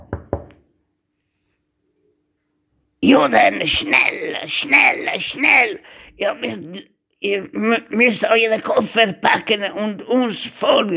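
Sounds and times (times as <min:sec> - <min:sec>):
knocks on a door: 0:00.0 - 0:00.6
speech: 0:03.0 - 0:10.9.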